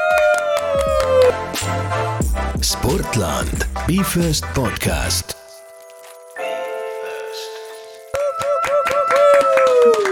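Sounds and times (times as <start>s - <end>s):
hand clapping: 0.1s - 1.8s, 8.1s - 10.1s
speech: 2.6s - 5.4s.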